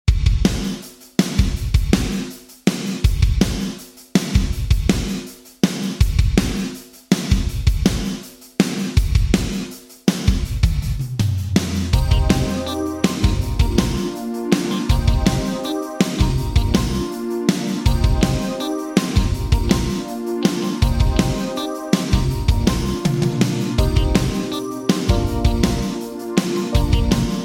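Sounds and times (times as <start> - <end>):
drums through Yamaha SPX900 vintage digital percussion early reflections: 0.1 - 27.4.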